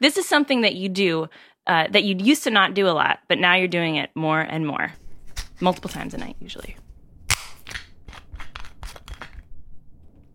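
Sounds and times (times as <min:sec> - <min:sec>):
speech: 0:00.0 - 0:05.0, 0:05.6 - 0:06.8
screw cap twisted open on a wine bottle: 0:07.5 - 0:09.5.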